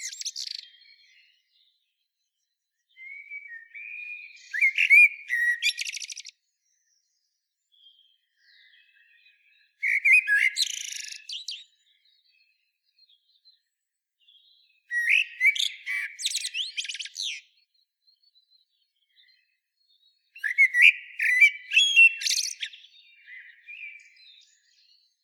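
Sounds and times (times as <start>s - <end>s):
common blackbird song: 0.0s - 25.2s.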